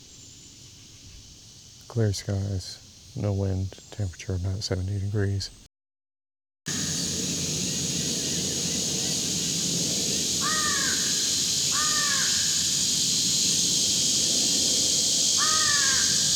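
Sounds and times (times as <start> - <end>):
steady high hiss: 0.0 - 5.7, 6.7 - 16.3
speech: 1.9 - 5.6
pair of American crows cawing in a pine across a road: 10.4 - 12.8, 15.4 - 16.3.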